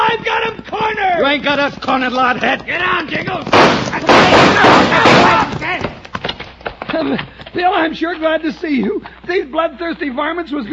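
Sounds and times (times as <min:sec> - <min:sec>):
speech: 0:01.3 - 0:05.8, 0:06.9 - 0:10.7
gunshots in a Western shootout: 0:03.4 - 0:05.8
person shouting: 0:03.9 - 0:05.7.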